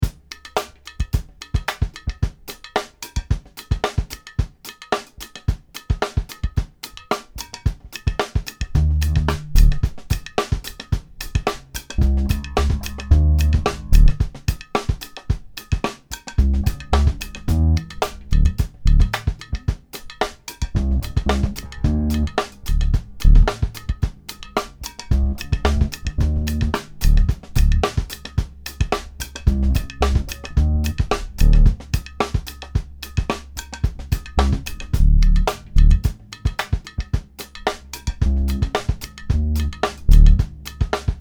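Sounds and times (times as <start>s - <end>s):
drums: 0.0s - 41.1s
Ibanez GIO bass: 8.6s - 41.1s.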